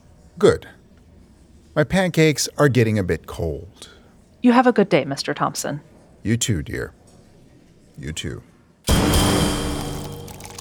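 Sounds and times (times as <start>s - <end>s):
speech: 0.4s - 0.8s, 1.8s - 7.0s, 8.0s - 9.1s
drink pouring into a cup: 9.6s - 10.5s.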